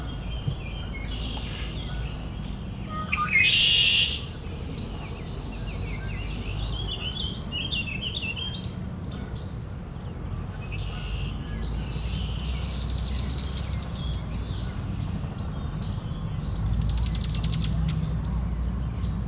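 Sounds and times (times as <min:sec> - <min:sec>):
red-winged blackbird calls in southern Ontario: 0:00.0 - 0:19.2.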